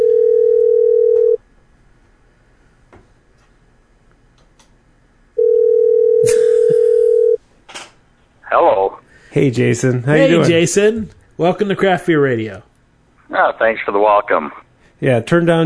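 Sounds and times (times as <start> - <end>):
ringback tone of an outgoing telephone call: 0.0 - 1.4, 5.4 - 7.4
speech: 9.4 - 12.7, 13.3 - 15.6.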